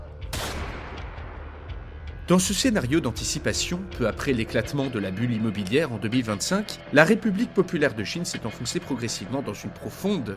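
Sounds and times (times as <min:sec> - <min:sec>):
lingering low rumble: 0:00.0 - 0:06.9
revolver gunshot in a dramatized scene: 0:00.3 - 0:01.7
speech: 0:02.3 - 0:10.3.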